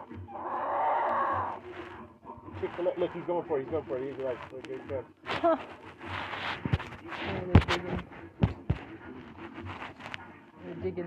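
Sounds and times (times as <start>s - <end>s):
chicken in a courtyard enclosure giving a raspy call: 0.0s - 1.6s
speech: 2.6s - 8.4s, 10.6s - 11.0s.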